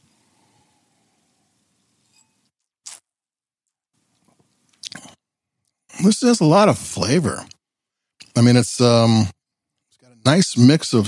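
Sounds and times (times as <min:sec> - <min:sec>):
faint hiss: 0:00.0 - 0:02.5, 0:04.0 - 0:11.0
person sipping sparkling wine from a glass: 0:04.8 - 0:05.2
speech: 0:06.0 - 0:07.6, 0:08.4 - 0:09.4, 0:10.2 - 0:11.0.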